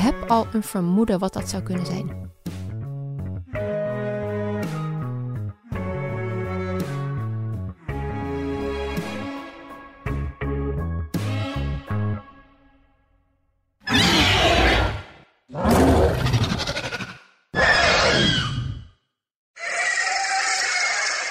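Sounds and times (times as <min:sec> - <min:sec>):
speech: 0:00.1 - 0:02.4
dramatic music: 0:03.4 - 0:12.7
dinosaur-like creature roaring: 0:13.9 - 0:18.9, 0:19.6 - 0:21.3.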